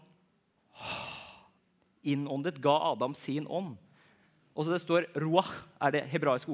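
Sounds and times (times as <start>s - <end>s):
person exhaling a breathy whoosh of air close to the mic: 0.7s - 1.6s
speech: 2.0s - 3.9s, 4.6s - 6.5s.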